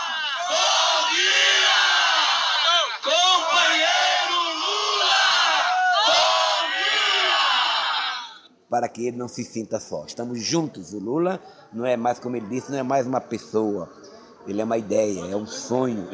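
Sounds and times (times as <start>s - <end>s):
large crowd shouting and chanting at a rally: 0.0s - 8.5s
speech: 8.8s - 16.1s.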